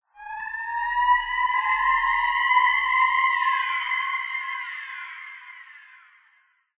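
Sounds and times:
warped sci-fi alarm sound design burst: 0.2 - 4.6.

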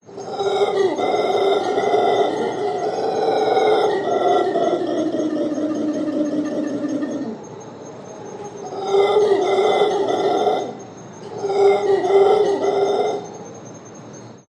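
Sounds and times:
howler monkeys howling in Costa Rica: 0.0 - 13.9.

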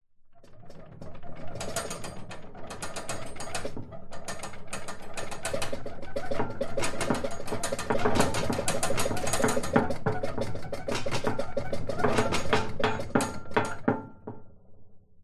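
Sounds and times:
household metal shelving rack with loose objects shaking and rattling: 0.4 - 14.4.

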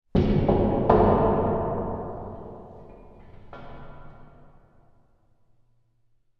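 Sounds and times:
metal playground slide hit resonating: 0.1 - 5.2.

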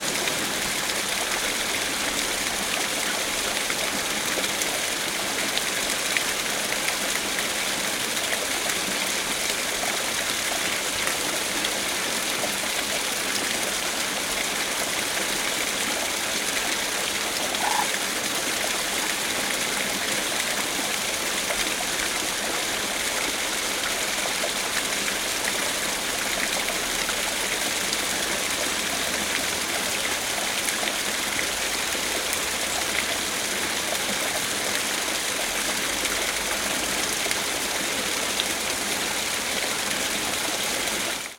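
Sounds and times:
waterfall: 0.0 - 41.3
small birds: 17.6 - 17.9.

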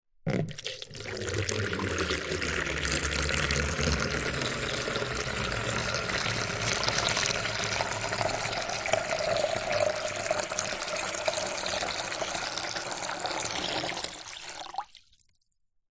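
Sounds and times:
water pouring into empty plastic container: 0.3 - 15.6.

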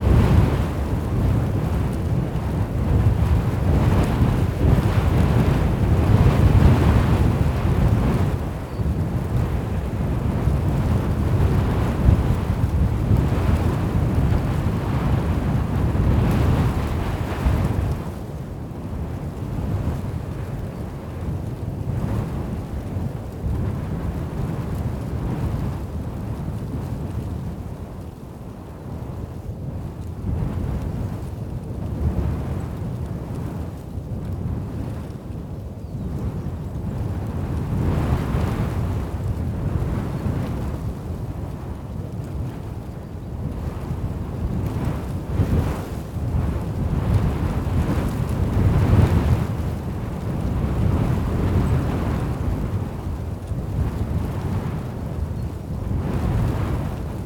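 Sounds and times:
wind in tall grass on spring prairie in Oklahoma USA: 0.0 - 57.2.

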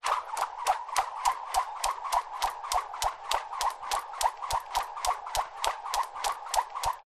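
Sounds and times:
skipping rope in a sports gym: 0.0 - 7.0.

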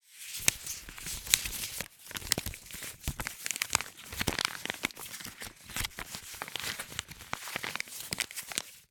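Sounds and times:
old paper 5 pounds banknote handling: 0.3 - 8.8.

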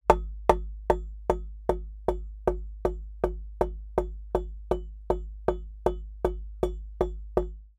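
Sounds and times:
hammer impacts on fixed wooden beam: 0.1 - 7.5.

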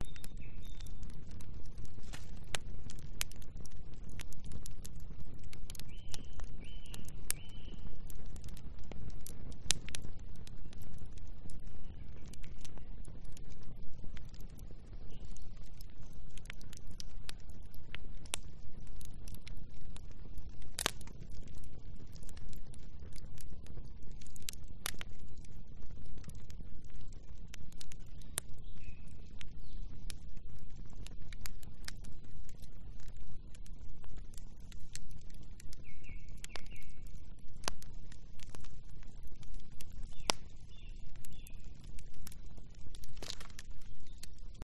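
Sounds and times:
campfire crackling: 0.0 - 44.6.

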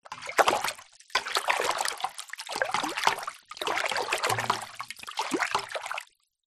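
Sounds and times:
household water stirred in metal pan: 0.0 - 6.2.

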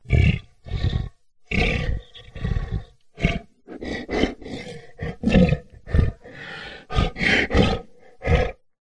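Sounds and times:
big cat panting: 1.8 - 8.6.

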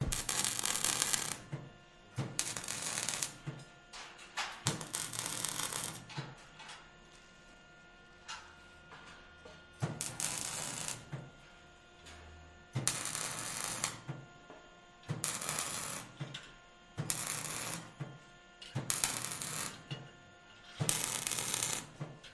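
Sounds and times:
electric welding with sparks: 0.0 - 1.6, 2.2 - 6.6, 9.8 - 11.4, 12.7 - 14.3, 15.0 - 20.0, 20.7 - 22.3
workers activity in background: 0.0 - 22.3.

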